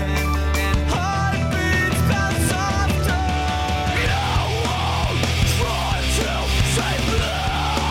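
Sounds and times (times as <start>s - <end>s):
loud music track with pounding drums and heavy bass: 0.0s - 7.9s
raw screamed vocal: 3.9s - 7.9s.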